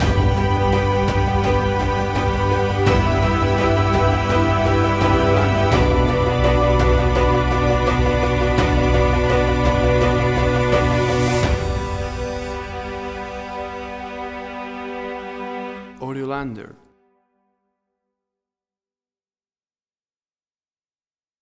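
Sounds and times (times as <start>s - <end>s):
ascending emotive strings action track: 0.0s - 16.0s.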